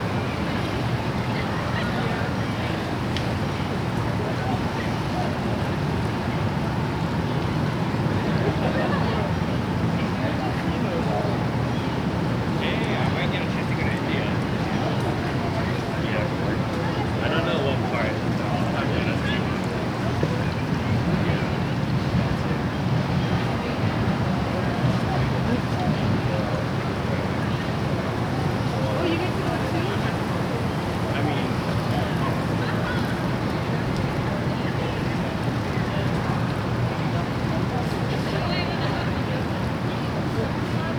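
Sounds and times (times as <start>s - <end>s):
park ambience in Houston: 0.0s - 40.9s.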